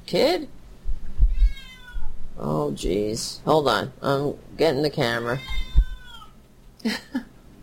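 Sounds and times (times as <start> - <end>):
low hum: 0.0 - 7.6
speech: 0.1 - 0.6, 2.4 - 5.6, 6.8 - 7.3
cat meowing: 1.2 - 2.2, 5.2 - 6.4.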